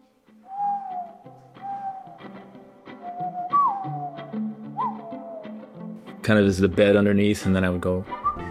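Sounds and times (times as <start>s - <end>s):
human whistling: 0.4s - 2.4s, 3.0s - 5.7s, 8.1s - 8.4s
mourning dove cooing: 0.6s - 2.3s, 3.1s - 5.7s
speech: 6.3s - 8.2s.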